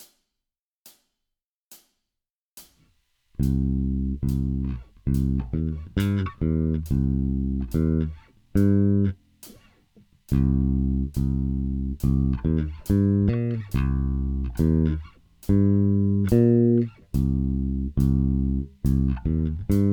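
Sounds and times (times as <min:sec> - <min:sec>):
rock bass sequences: 0:03.4 - 0:09.7, 0:10.3 - 0:19.9.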